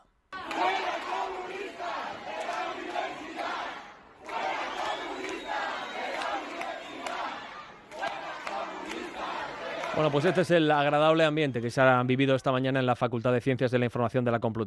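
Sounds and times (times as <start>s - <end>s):
large crowd chanting protest slogans: 0.3s - 10.9s
speech: 10.0s - 14.6s.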